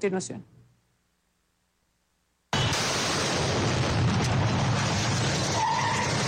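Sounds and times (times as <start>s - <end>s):
car bomb explosion in front of a shopping mall in northern Guayaquil: 2.5s - 6.2s.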